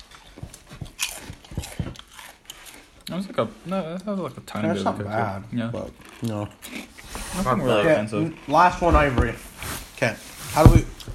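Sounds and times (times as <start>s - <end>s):
spicy ranch corn chips being bitten and chewed: 0.0s - 3.0s
speech: 3.1s - 6.8s, 7.4s - 10.9s.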